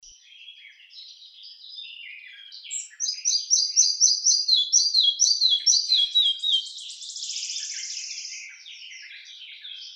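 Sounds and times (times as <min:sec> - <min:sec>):
Red-breasted flycatcher Ficedula parva singing with a buzzy trill: 0:02.6 - 0:08.5.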